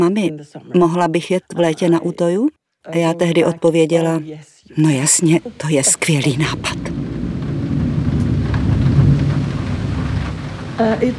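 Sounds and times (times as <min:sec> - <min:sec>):
speech: 0:00.0 - 0:07.1, 0:10.8 - 0:11.1
deep rumble under rain: 0:04.8 - 0:11.1
heavy rain pouring down: 0:04.8 - 0:11.1.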